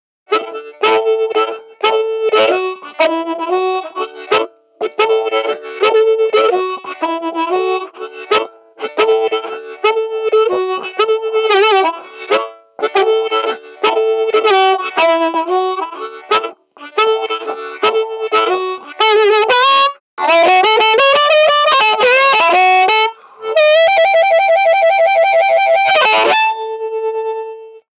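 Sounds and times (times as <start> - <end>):
blues harmonica ending: 0.3 - 27.9.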